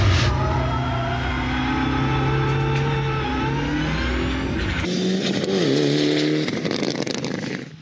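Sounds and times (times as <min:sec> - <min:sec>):
high-torque car engine accelerating on a test drive on a circuit: 0:00.0 - 0:07.8.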